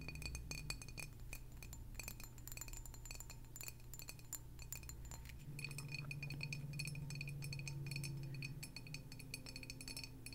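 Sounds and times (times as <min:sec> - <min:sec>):
rapid tapping on glass: 0:00.0 - 0:10.3
steady low hum: 0:05.1 - 0:10.3.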